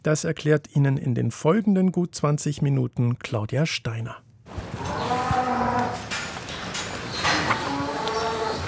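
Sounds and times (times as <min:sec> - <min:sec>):
speech: 0:00.0 - 0:04.3
knocks and shuffling from the cow herd: 0:04.5 - 0:08.6
cows mooing in a cowshed during a conflict within the herd: 0:04.8 - 0:06.3, 0:07.1 - 0:08.6.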